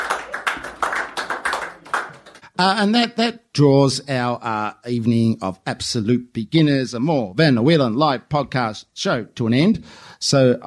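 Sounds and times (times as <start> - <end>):
modest audience clapping: 0.0 - 2.6
speech: 2.6 - 10.6.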